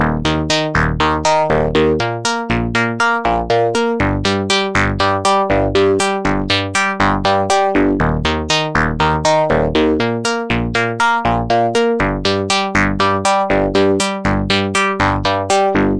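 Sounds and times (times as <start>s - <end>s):
slow synth arpeggio with hard filter: 0.0s - 15.9s.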